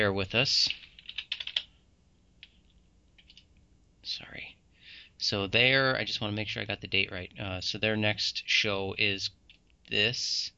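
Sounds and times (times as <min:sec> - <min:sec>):
speech: 0:00.0 - 0:00.9, 0:04.0 - 0:04.5, 0:05.2 - 0:10.5
typing on a computer keyboard: 0:00.7 - 0:01.7, 0:03.2 - 0:03.5.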